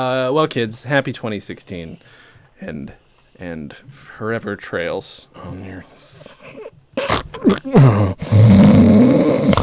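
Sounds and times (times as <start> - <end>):
speech: 0.0 - 9.6
person imitating wheezy asthmatic snoring: 7.0 - 9.6.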